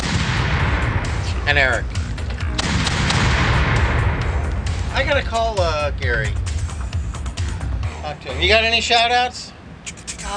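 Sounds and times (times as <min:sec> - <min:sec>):
small cannon firing: 0:00.0 - 0:01.4, 0:02.4 - 0:05.2
steady loud rumble: 0:00.0 - 0:08.8
speech: 0:01.5 - 0:02.0, 0:05.0 - 0:06.5, 0:08.1 - 0:09.5.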